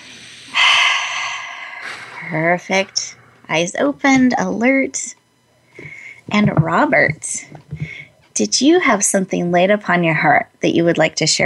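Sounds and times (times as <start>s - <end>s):
deep breath during a guided breathing exercise: 0.0s - 2.4s, 5.7s - 6.2s, 7.7s - 8.2s
speech: 2.2s - 5.2s, 5.8s - 11.4s.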